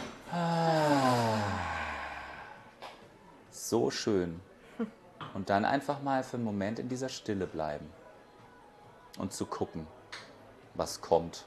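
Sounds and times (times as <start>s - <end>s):
person inhaling: 0.3s - 2.7s
speech: 3.7s - 8.0s, 9.2s - 10.0s, 10.8s - 11.4s.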